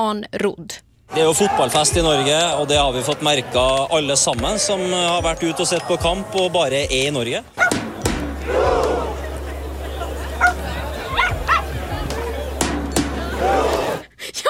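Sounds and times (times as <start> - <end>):
speech: 0.0 - 7.8
loud steady crowd roar: 1.1 - 14.1
laughter: 1.2 - 6.7, 8.4 - 14.4
small dog yapping: 7.6 - 7.8.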